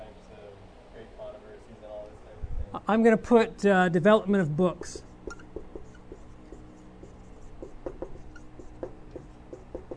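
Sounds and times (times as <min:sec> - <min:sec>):
speech: 0:02.8 - 0:05.1
pen scratching on paper jotting notes by hand: 0:05.1 - 0:09.9.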